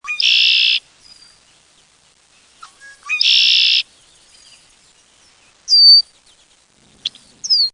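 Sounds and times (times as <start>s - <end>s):
red-winged blackbird: 0.0s - 7.7s.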